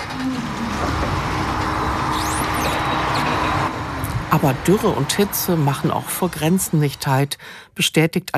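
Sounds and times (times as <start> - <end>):
high squeaks and scrapes: 0.0 - 3.7
loud mechanical rumble of pallets being unloaded from a truck: 0.0 - 7.3
speech: 4.3 - 8.3.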